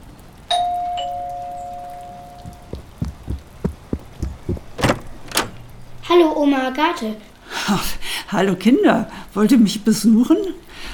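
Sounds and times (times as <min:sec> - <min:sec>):
two-tone ding-dong doorbell chime: 0:00.5 - 0:02.5
soft irregular thuds: 0:02.5 - 0:05.7
speech: 0:06.1 - 0:10.6.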